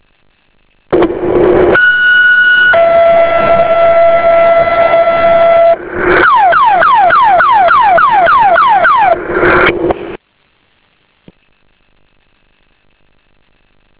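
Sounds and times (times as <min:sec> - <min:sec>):
emergency tone: 0:01.7 - 0:09.6.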